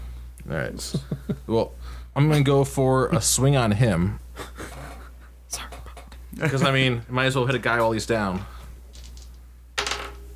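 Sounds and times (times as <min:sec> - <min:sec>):
speech: 0:00.5 - 0:04.2, 0:06.4 - 0:08.6
dice rolled onto a hard tabletop: 0:08.9 - 0:10.3.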